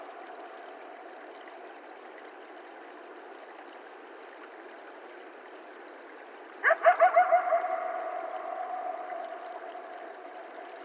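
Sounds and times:
several coyotes yipping and howling: 6.6s - 10.8s.

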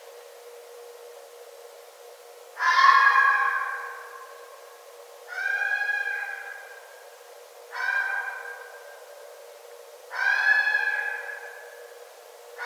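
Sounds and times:
red fox calling with long tonal cries: 2.6s - 4.0s, 5.3s - 6.8s, 7.7s - 8.8s, 10.1s - 11.6s.

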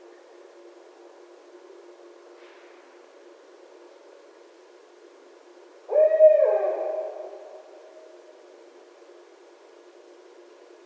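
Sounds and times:
barred owl giving a drawn-out hoot: 5.9s - 8.2s.

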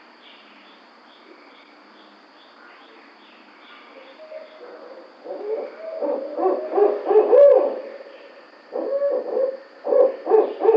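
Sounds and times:
barred owl wavering hoot: 4.2s - 8.1s, 8.7s - 10.7s
barred owl excited cackling notes: 5.2s - 7.8s, 8.7s - 10.7s.

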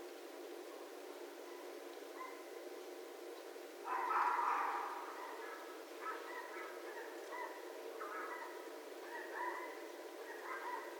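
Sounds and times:
background hiss: 0.0s - 10.9s
red fox giving a hoarse drawn-out cry: 3.9s - 9.7s.

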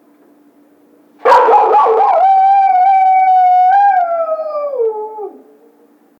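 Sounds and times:
coyote howling: 1.2s - 5.5s.

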